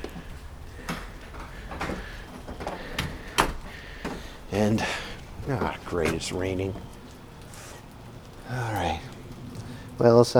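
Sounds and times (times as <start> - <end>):
door being shut and locked at an old ice house by a pond: 0.0 - 7.0
steady broadband noise: 0.0 - 10.3
speech: 4.5 - 7.0, 8.5 - 9.1, 10.0 - 10.3.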